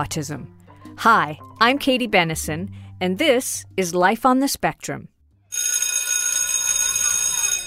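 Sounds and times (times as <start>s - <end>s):
speech: 0.0s - 5.1s
electric school bell ringing: 5.5s - 7.6s.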